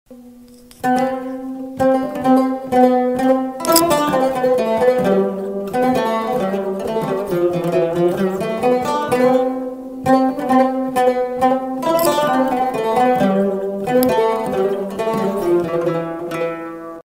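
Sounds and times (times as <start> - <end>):
Cümbüş playing: 0.1 - 17.0.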